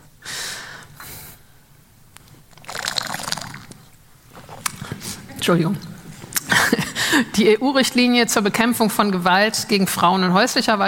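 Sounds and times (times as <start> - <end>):
faint wet slurping and swallowing: 2.5 - 5.2
sipping water: 2.5 - 5.3
speech: 5.5 - 5.9, 7.1 - 10.8.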